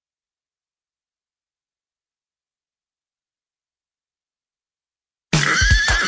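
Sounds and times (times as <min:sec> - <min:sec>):
horse neighing: 0:05.4 - 0:06.0.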